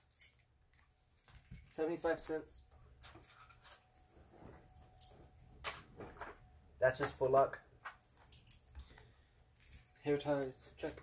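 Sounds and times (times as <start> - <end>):
house keys jingling: 0.0 - 0.5, 1.1 - 2.0, 3.2 - 5.9, 8.0 - 9.0
handling and rustling: 0.0 - 11.0
speech: 1.8 - 3.2, 6.8 - 7.6, 10.0 - 11.0.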